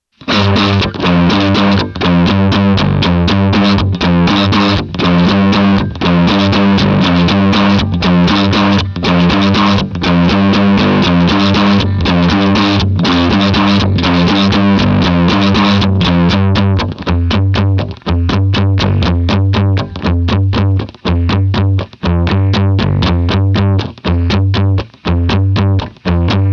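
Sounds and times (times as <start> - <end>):
guitar in drop C tuning: 0.1 - 26.5.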